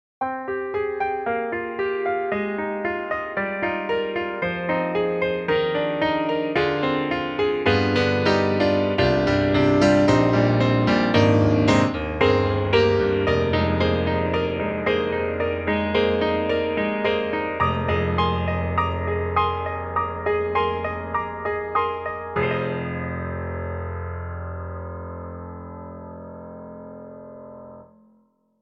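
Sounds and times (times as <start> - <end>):
Imperial Grand piano with envelope filter: 0.2 - 28.6.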